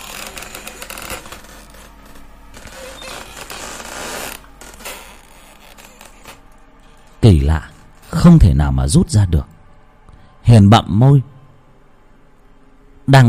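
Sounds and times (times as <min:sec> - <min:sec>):
wooden door bolt creaking as it slides along a wooden door: 0:00.0 - 0:06.4
speech: 0:07.3 - 0:09.5, 0:10.5 - 0:11.3, 0:13.1 - 0:13.2.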